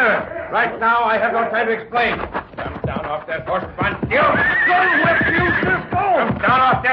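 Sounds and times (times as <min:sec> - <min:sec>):
speech: 0:00.2 - 0:06.9
clattering horse hoofbeats: 0:01.9 - 0:06.9
horse neighing: 0:03.6 - 0:06.0.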